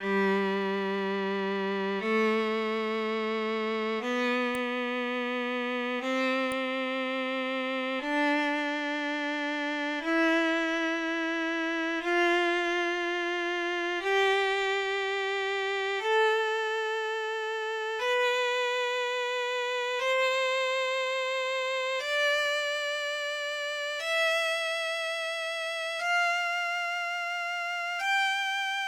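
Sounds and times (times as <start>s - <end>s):
violin test tone: 0.0s - 28.8s.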